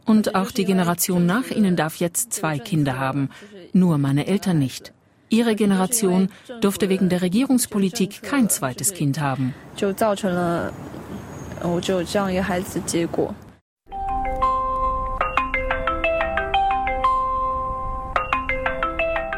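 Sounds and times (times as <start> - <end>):
speech: 0.1 - 13.4
mobile phone ringtone with bright repeating electronic melody: 13.9 - 19.3.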